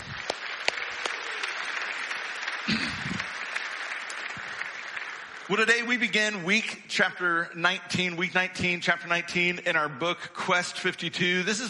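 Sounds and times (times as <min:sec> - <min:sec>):
crowd applauding for mothers: 0:00.0 - 0:06.4
speech: 0:05.5 - 0:11.6.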